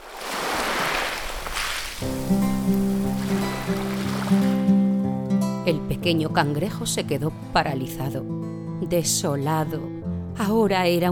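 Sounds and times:
ocean waves: 0:00.0 - 0:05.0
speech: 0:02.3 - 0:02.8, 0:05.7 - 0:11.0.

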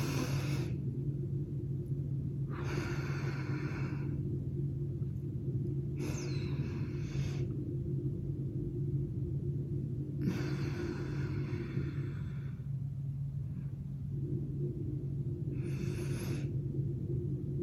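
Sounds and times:
slow box breathing in and out: 0:00.0 - 0:01.4, 0:02.4 - 0:04.6, 0:05.3 - 0:08.0, 0:10.0 - 0:17.6
steady low hum: 0:00.0 - 0:17.6.

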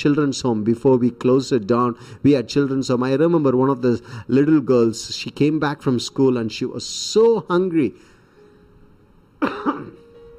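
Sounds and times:
speech: 0:00.0 - 0:08.1, 0:09.4 - 0:10.0
cough: 0:09.4 - 0:10.0.

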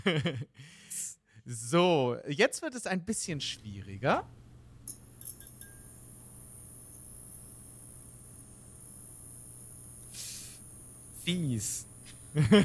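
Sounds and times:
laughter: 0:00.0 - 0:00.5, 0:12.4 - 0:12.6
speech: 0:00.0 - 0:00.8, 0:01.5 - 0:04.4, 0:11.3 - 0:12.6
electrical hiss from a stage spotlight dimmer: 0:03.1 - 0:12.6.

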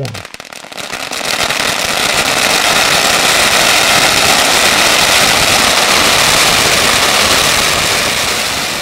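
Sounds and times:
speech: 0:00.0 - 0:00.3
countless firecrackers exploding at once: 0:00.0 - 0:08.8.

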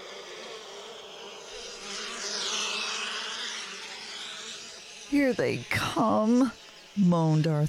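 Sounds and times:
dense swarm of bees buzzing: 0:00.0 - 0:07.6
speech: 0:05.1 - 0:07.6.

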